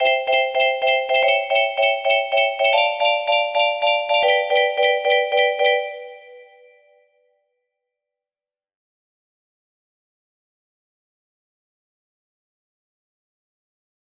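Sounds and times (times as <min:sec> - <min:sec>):
music box melody: 0:00.0 - 0:06.7
chord progression: 0:00.0 - 0:06.8.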